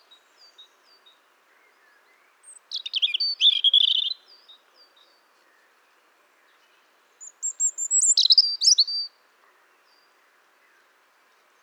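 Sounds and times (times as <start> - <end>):
European robin Erithacus rubecula singing: 2.5 - 4.2, 7.2 - 9.1.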